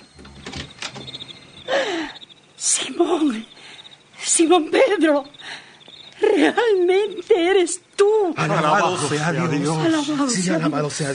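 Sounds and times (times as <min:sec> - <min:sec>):
door being opened: 0:00.0 - 0:01.7
speech: 0:02.8 - 0:03.5, 0:04.4 - 0:05.4, 0:06.4 - 0:11.1.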